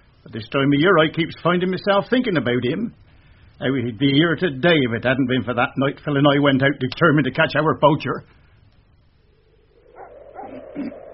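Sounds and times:
faint hum: 0:00.0 - 0:11.1
speech: 0:00.2 - 0:03.0, 0:03.6 - 0:08.4
dog barking: 0:09.7 - 0:11.1.

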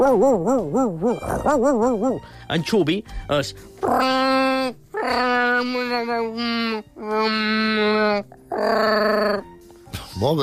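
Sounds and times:
person imitating a Mallorcan shepherd dog barking: 0:00.0 - 0:02.3, 0:03.8 - 0:09.5
speech: 0:00.0 - 0:09.5, 0:10.2 - 0:10.4.

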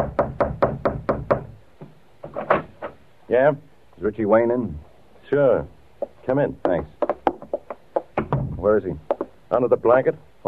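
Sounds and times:
firm knocking on a door: 0:00.0 - 0:02.0, 0:06.0 - 0:09.4
speech: 0:03.3 - 0:07.0, 0:08.6 - 0:10.4
soft thuds: 0:06.0 - 0:09.4.

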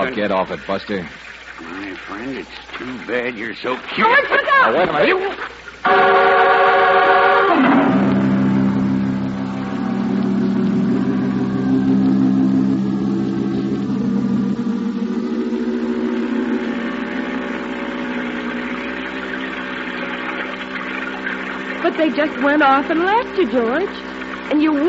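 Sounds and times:
speech: 0:00.0 - 0:06.4, 0:22.0 - 0:24.8
outboard motor boat engine running: 0:05.9 - 0:24.8.

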